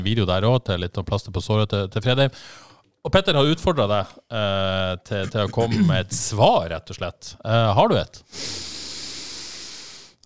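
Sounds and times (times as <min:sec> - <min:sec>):
speech: 0:00.0 - 0:08.8
deep breath in before reciting: 0:02.3 - 0:02.8, 0:08.3 - 0:10.2.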